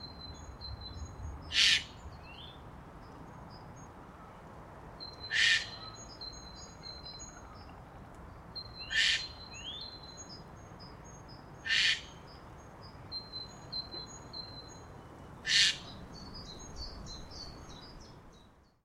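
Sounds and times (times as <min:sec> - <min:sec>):
Eurasian jay calling: 0:05.3 - 0:05.8, 0:08.9 - 0:09.3, 0:11.6 - 0:12.1, 0:15.4 - 0:15.8.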